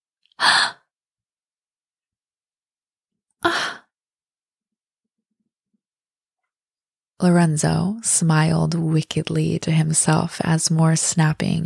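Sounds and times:
woman gasping: 0:00.4 - 0:00.8, 0:03.4 - 0:03.9
speech: 0:07.2 - 0:11.6.

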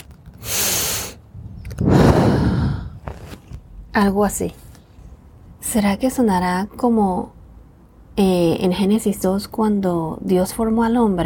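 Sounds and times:
person breathing in and out: 0:00.4 - 0:01.2, 0:01.8 - 0:03.1
speech: 0:04.0 - 0:04.6, 0:05.7 - 0:07.4, 0:08.2 - 0:11.2.

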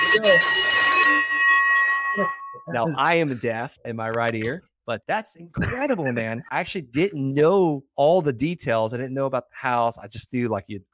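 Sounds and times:
victory bell struck loudly: 0:00.0 - 0:03.1
speech: 0:00.2 - 0:00.8, 0:02.2 - 0:10.9.

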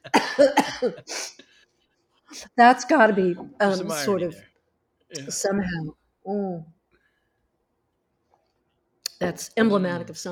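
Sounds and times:
person coughing, choking on a cookie: 0:00.0 - 0:01.4
speech: 0:00.4 - 0:01.3, 0:02.4 - 0:04.5, 0:05.1 - 0:06.8, 0:09.2 - 0:10.3.

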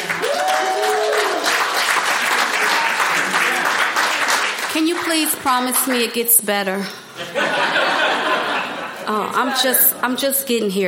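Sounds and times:
audience clapping and cheering in a room: 0:00.0 - 0:06.2
person whooping: 0:00.1 - 0:01.5
speech: 0:05.1 - 0:07.8, 0:09.1 - 0:10.8
laughter: 0:07.2 - 0:09.9.

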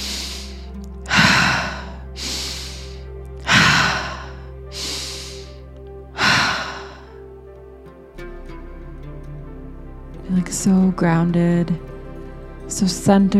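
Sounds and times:
deep audible breathing: 0:00.0 - 0:07.3
speech: 0:10.3 - 0:11.9, 0:12.7 - 0:13.3.

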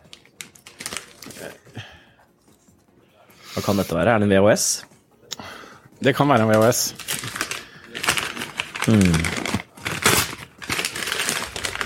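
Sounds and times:
Christmas gift wrapping paper being torn open: 0:00.1 - 0:01.6, 0:06.4 - 0:11.8
speech: 0:01.4 - 0:01.8, 0:03.6 - 0:04.9, 0:06.0 - 0:07.4, 0:08.9 - 0:09.4.

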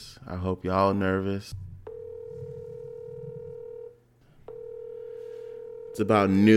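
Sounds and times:
speech: 0:00.2 - 0:01.7, 0:06.0 - 0:06.5
steady telephone tone: 0:01.8 - 0:06.5.

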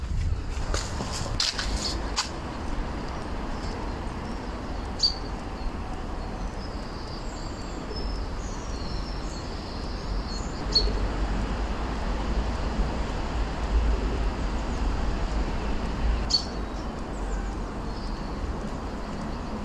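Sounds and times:
distant car traffic rumble: 0:00.0 - 0:19.6
urban garden bird chirps: 0:04.9 - 0:05.7, 0:06.3 - 0:11.0, 0:16.3 - 0:18.4.

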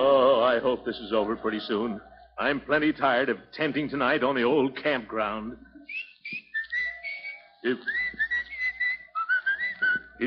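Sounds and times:
faint noise: 0:00.0 - 0:10.2
speech: 0:00.6 - 0:06.4, 0:07.6 - 0:08.0
person whistling a melodic tune: 0:05.9 - 0:10.2.

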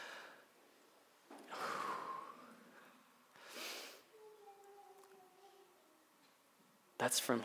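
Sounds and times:
person's deep breaths during a slow breathing exercise: 0:00.0 - 0:00.5, 0:01.5 - 0:04.1
speech: 0:07.0 - 0:07.4.

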